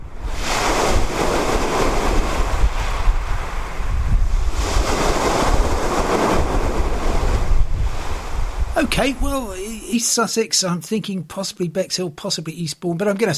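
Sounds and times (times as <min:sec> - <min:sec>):
wind buffeting the microphone: 0:00.0 - 0:09.8
sea waves washing onto a shore: 0:00.0 - 0:10.0
speech: 0:09.0 - 0:13.3.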